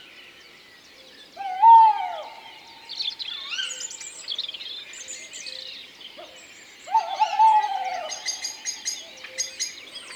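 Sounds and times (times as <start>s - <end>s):
male tawny owl calling in a wood: 1.4s - 3.9s, 6.9s - 9.6s.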